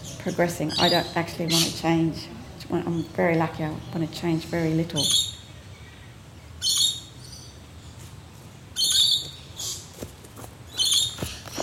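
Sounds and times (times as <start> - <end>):
bright high-pitched bird calls in a park: 0.0 - 2.0, 3.8 - 6.0, 6.6 - 7.6, 8.8 - 9.9, 10.7 - 11.6
faint low ambient noise: 0.0 - 11.6
speech: 0.2 - 5.4
soft rustling: 7.9 - 11.6.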